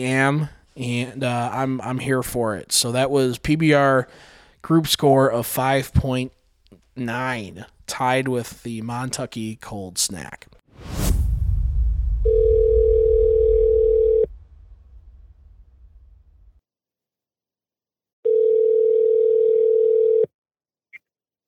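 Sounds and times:
speech: 0.0 - 6.4, 7.0 - 11.1
telephone ringing with steady electronic tone: 12.3 - 14.3, 18.2 - 20.3.

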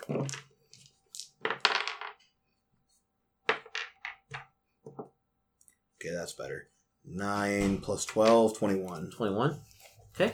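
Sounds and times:
two dice rolled onto a surface during a tabletop role-playing game: 0.0 - 2.3, 3.5 - 4.5
speech: 6.0 - 10.3.

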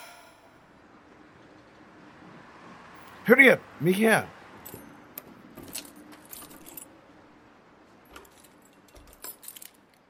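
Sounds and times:
speech: 3.3 - 4.4
keys jangling while unlocking office door: 5.6 - 7.0, 8.1 - 10.0.

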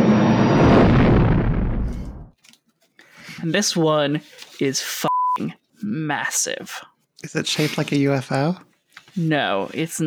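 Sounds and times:
sci-fi space explosion of a fighter ship: 0.0 - 2.3
speech: 3.4 - 10.0.

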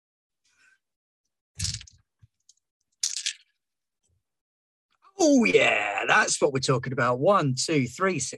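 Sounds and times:
dice clattering onto a hard surface: 3.0 - 3.4
speech: 5.2 - 8.3.

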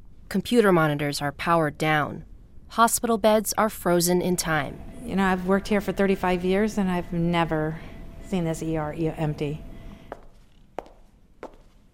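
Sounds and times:
speech: 0.3 - 9.7
footsteps echoing on a hard floor in an empty hospital ER: 10.1 - 11.9.

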